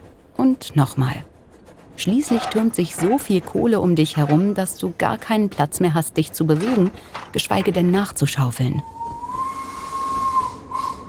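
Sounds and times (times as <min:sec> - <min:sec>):
speech: 0:00.4 - 0:01.3, 0:02.0 - 0:09.0
steam locomotive whistle as it comes to a stop: 0:08.8 - 0:11.0.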